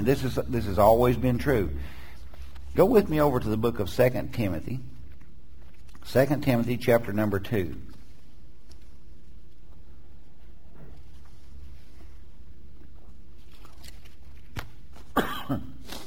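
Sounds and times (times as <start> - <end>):
speech: 0.0 - 2.0, 2.8 - 4.9, 6.0 - 7.9, 15.5 - 15.7
quiet room hum: 0.0 - 16.0
person coughing: 15.1 - 15.9.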